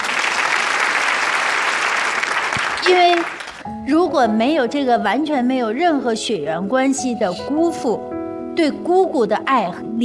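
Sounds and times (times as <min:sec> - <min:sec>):
audience applause: 0:00.0 - 0:03.6
speech: 0:02.9 - 0:10.0.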